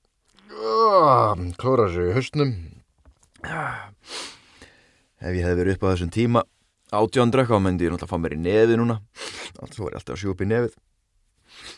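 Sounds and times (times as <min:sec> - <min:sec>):
person imitating a low stretching groan: 0:00.4 - 0:01.5
speech: 0:01.5 - 0:02.8, 0:05.2 - 0:10.8.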